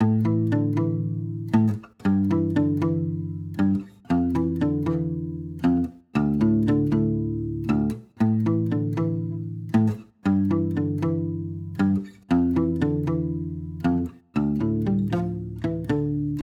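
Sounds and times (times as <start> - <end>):
guitars playing in A minor: 0.0 - 16.4.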